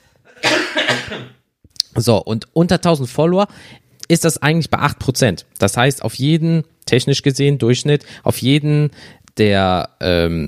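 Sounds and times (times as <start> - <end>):
harsh drawn-out cough: 0.3 - 1.4
sharp throat sound: 0.3 - 1.4
speech: 1.1 - 1.4, 2.0 - 10.4.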